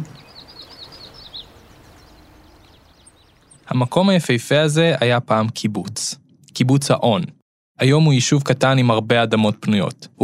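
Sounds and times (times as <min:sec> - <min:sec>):
small birds chirping by lakeside water: 0:00.0 - 0:04.2
soft steady outdoor ambience: 0:00.0 - 0:10.2
speech: 0:03.7 - 0:10.2.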